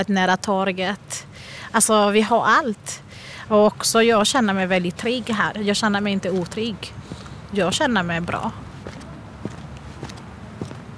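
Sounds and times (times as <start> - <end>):
speech: 0.0 - 8.7
footsteps walking towards a tram: 6.3 - 10.9.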